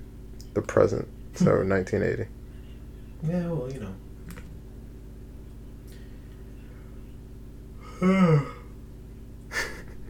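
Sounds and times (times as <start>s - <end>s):
speech: 0.6s - 2.4s, 3.2s - 4.1s, 8.0s - 8.6s
person yawning with a breathy exhale: 7.8s - 8.7s.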